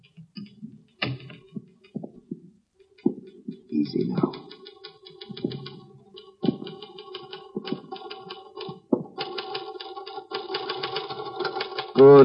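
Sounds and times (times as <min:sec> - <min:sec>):
typewriter typing a letter: 0:03.5 - 0:12.2
speech: 0:03.8 - 0:04.5, 0:12.0 - 0:12.2.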